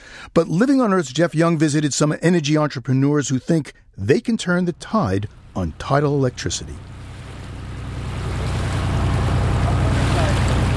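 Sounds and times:
speech: 0.4s - 6.9s
low droning hum: 4.7s - 10.7s
water lapping around a barge-like craft moored to a dock in Portland Maine: 5.3s - 10.7s.

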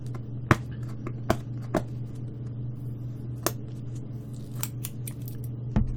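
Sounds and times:
steady low hum: 0.0s - 5.9s
packing tape being cut to open a tightly sealed box: 4.2s - 5.5s.

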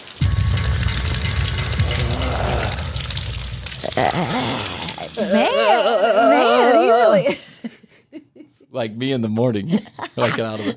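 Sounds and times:
water splashing as a man enters cold water: 0.0s - 6.9s
speech: 4.0s - 7.8s, 8.7s - 10.7s
laughter: 9.6s - 10.7s.

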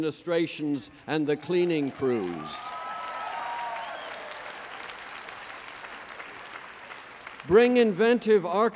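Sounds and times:
speech: 0.0s - 2.8s, 7.4s - 8.7s
large audience clapping: 1.7s - 8.6s
whistle or cheer: 2.4s - 4.4s.

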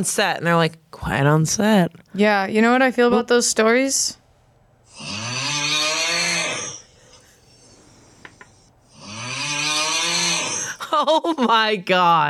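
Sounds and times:
speech: 0.0s - 4.2s, 11.0s - 12.2s
man imitating snoring with the voice: 4.9s - 10.8s.

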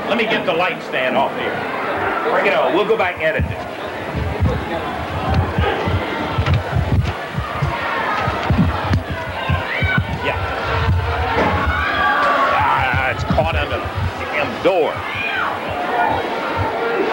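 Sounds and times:
crowd shouting and yelling at a sports arena: 0.0s - 17.1s
speech: 0.1s - 3.7s, 4.5s - 5.4s, 14.6s - 15.1s
thuds and scuffling of men fighting in a concession stand: 3.2s - 15.8s.

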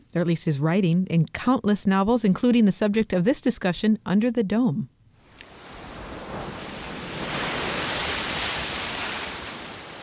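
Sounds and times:
speech: 0.1s - 4.9s
ocean surf washing onto a shore: 5.3s - 10.0s.

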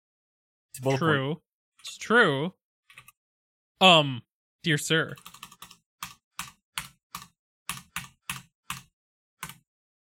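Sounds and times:
speech: 0.8s - 2.6s, 3.8s - 5.4s
hard typing on a computer keyboard: 5.2s - 9.7s.

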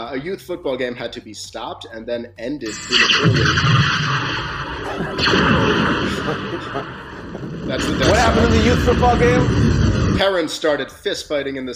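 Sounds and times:
speech: 0.1s - 11.7s
fireworks sound effect from a sound pad crackling and booming: 3.3s - 10.2s
laughter: 4.8s - 8.5s.

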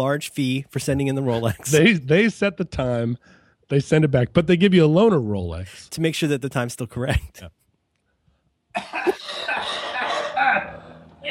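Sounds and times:
speech: 0.0s - 7.6s, 8.8s - 9.6s
loud fit of rough throaty coughing: 8.7s - 11.0s.

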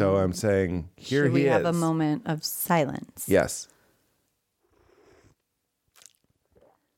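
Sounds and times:
speech: 0.0s - 3.8s
slurping a sip of hot espresso: 4.7s - 6.9s
gulping and swallowing espresso: 5.9s - 6.9s.

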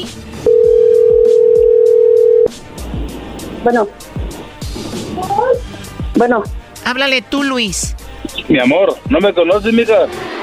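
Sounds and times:
speech: 0.0s - 0.5s, 3.6s - 4.2s, 6.2s - 10.2s
telephone dial tone: 0.5s - 2.5s.

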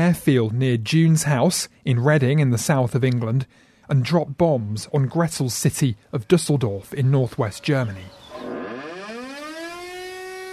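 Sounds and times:
speech: 0.0s - 8.5s
air raid siren wailing: 8.3s - 10.5s.

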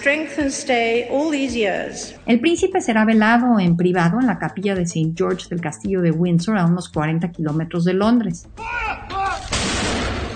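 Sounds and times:
speech: 0.0s - 9.0s
heavy cannon blast from a 41-gun salute by British military formations: 9.4s - 10.3s.

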